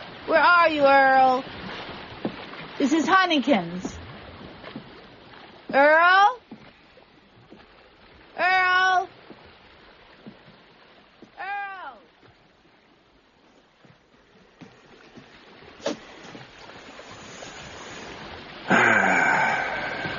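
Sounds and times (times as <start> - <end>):
sea waves washing: 0.0 - 20.1
speech: 0.3 - 1.6, 2.8 - 3.9, 5.7 - 6.4.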